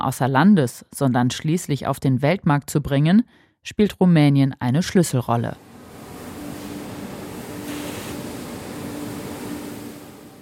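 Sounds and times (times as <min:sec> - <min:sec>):
speech: 0:00.0 - 0:05.7
low truck engine drone: 0:05.6 - 0:10.3
grain pouring out of a truck at a port terminal: 0:05.8 - 0:09.6.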